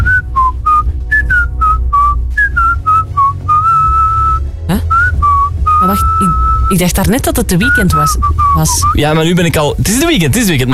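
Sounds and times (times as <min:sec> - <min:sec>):
person whistling a pop tune: 0:00.0 - 0:06.8, 0:07.6 - 0:09.0
speech: 0:06.7 - 0:10.7.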